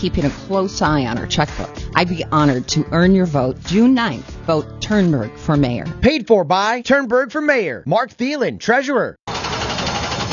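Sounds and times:
speech: 0.0s - 9.2s
racing car engine at a speedway roaring at full throttle: 9.3s - 10.3s.

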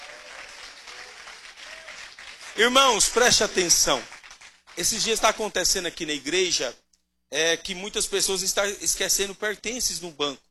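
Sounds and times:
church congregation clapping during a worship service: 0.0s - 5.7s
speech: 2.6s - 4.2s, 4.8s - 10.4s.

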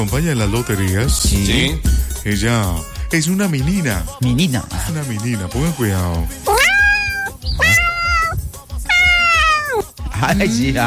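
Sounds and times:
speech: 0.0s - 6.7s, 10.2s - 10.8s
kitten meowing: 6.5s - 9.9s.

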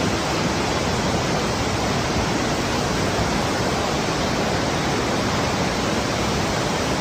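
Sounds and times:
waterfall gushing out of a rock cave at the source of the Río Mundo: 0.0s - 6.9s.

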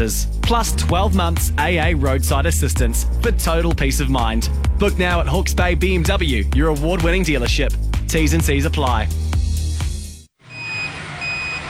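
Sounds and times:
speech: 0.0s - 9.2s
reversing beeps from a truck delivering a shipping container: 10.4s - 11.6s.

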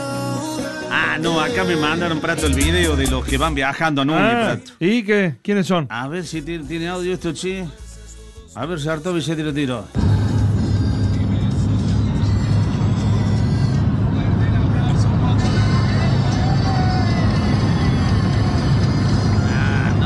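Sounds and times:
speech: 0.9s - 7.8s, 8.6s - 10.2s
car driving along a road at dawn: 10.0s - 20.0s.

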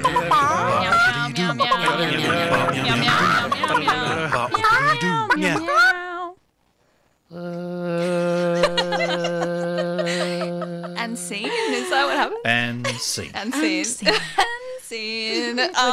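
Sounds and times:
steady vocal drone: 0.0s - 5.9s, 7.3s - 12.8s
laughter: 0.0s - 6.2s, 8.0s - 15.9s
people imitating cat meows: 0.0s - 6.4s, 7.3s - 11.4s
speech: 15.6s - 15.9s.

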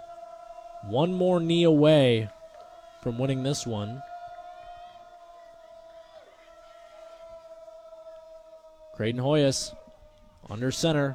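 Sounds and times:
stadium crowd roaring, cheering and yelling: 0.0s - 11.1s
speech: 0.8s - 2.4s, 3.0s - 4.1s, 9.0s - 9.8s, 10.4s - 11.1s.

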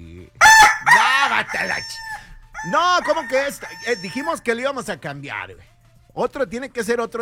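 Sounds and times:
rooster crowing: 0.4s - 4.5s
speech: 1.4s - 7.1s.

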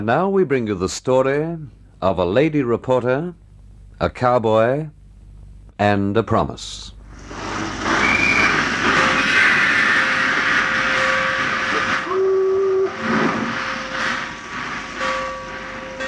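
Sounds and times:
speech: 0.0s - 3.4s, 4.0s - 5.0s, 5.8s - 7.0s
steam train pulling away from a station: 7.0s - 16.0s.

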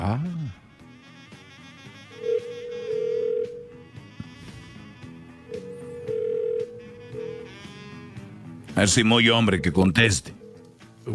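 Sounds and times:
outgoing phone call ringback tone: 2.1s - 8.1s, 8.8s - 10.7s
speech: 8.8s - 10.4s.

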